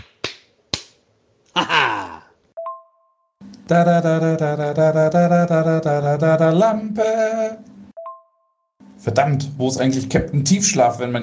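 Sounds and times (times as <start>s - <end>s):
sharp loud slap-like smacks: 0.0s - 1.0s
speech: 3.7s - 7.7s, 9.0s - 11.2s.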